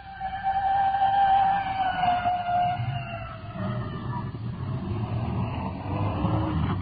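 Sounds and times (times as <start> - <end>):
fire department rescue squad respirator truck siren wailing past: 0.0 - 4.9
heavy engine and road rumble: 3.7 - 6.8.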